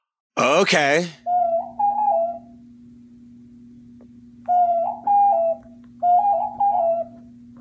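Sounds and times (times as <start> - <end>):
steady low hum: 0.4 - 7.5
speech: 0.6 - 1.2
pigeon cooing in soft hollow ocarina-like phrases: 1.3 - 2.6, 4.5 - 7.4.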